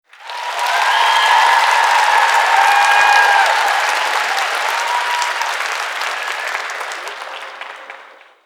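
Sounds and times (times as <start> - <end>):
sitcom audience applause and cheers: 0.0 - 8.4.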